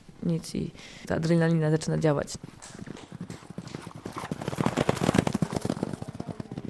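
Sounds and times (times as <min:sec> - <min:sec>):
speech: 0:00.2 - 0:03.0
hoofbeats of a horse galloping fast during horseback archery: 0:01.9 - 0:06.6.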